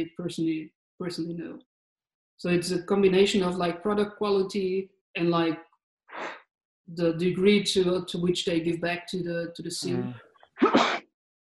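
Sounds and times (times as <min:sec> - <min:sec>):
speech: 0:00.0 - 0:01.7, 0:02.4 - 0:11.0
person sneezing: 0:10.6 - 0:11.0.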